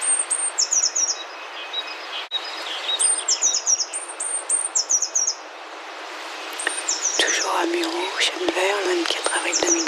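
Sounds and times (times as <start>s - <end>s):
blue tit singing: 0.0s - 5.4s, 6.5s - 9.8s
steady outdoor hiss: 0.0s - 9.8s
speech: 7.7s - 9.8s.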